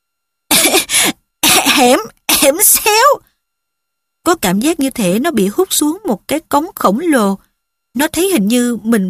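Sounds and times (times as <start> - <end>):
harsh raspy coughs after swallowing ash: 0.5 - 1.8
speech: 1.8 - 3.3, 4.2 - 9.0.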